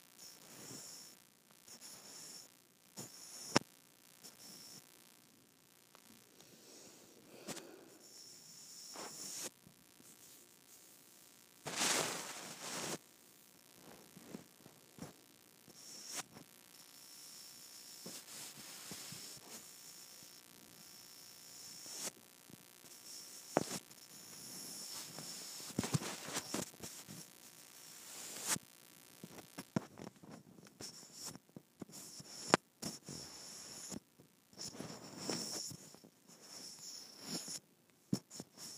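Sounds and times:
faint steady hiss: 0.0 - 38.7
microphone rubbed against skin: 0.2 - 3.6, 6.5 - 13.0, 13.8 - 16.5, 17.8 - 20.1, 22.8 - 28.6, 29.2 - 38.7.

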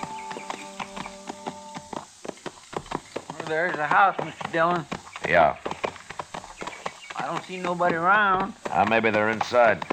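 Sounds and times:
horses' hooves clip-clopping at a walking pace: 0.0 - 9.9
speech: 3.5 - 5.7, 7.2 - 9.9.

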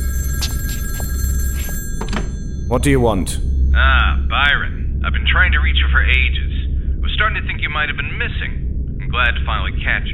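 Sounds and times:
telephone bell ringing: 0.0 - 4.3
steady low hum: 0.0 - 10.1
speech: 2.7 - 4.6, 5.4 - 6.5, 7.2 - 10.1.

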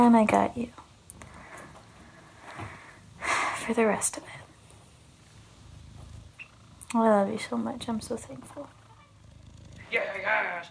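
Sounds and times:
speech: 0.0 - 0.8, 3.7 - 4.4, 6.9 - 8.8, 9.9 - 10.6
cat purring while being petted: 0.0 - 10.6.

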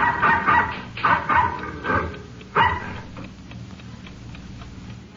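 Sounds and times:
dog barking at night: 0.0 - 3.0.

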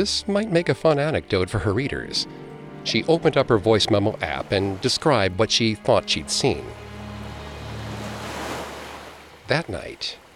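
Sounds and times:
speech: 0.0 - 6.8, 9.5 - 10.3
ocean waves washing against rocks: 3.6 - 10.3.

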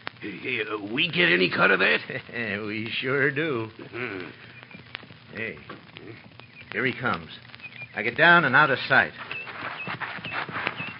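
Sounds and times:
speech: 0.2 - 4.6, 5.3 - 9.3
horse hooves clip-clopping: 4.4 - 10.9.

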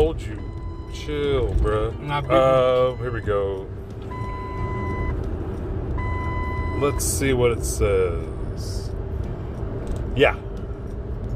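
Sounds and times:
truck reversing alarm beeping: 0.0 - 5.2, 6.0 - 7.2
truck engine low rumble: 0.0 - 11.3
speech: 0.2 - 3.8, 6.8 - 8.8, 10.2 - 10.5.

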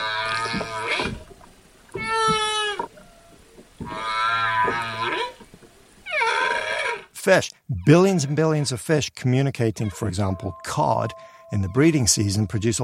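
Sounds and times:
whale moaning calls underwater: 0.0 - 1.2, 2.0 - 5.4, 6.0 - 7.1, 9.8 - 10.6
speech: 7.3 - 12.8.

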